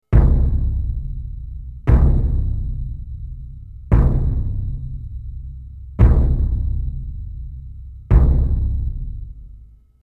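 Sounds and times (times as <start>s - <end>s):
timpani hits: 0.0s - 9.7s.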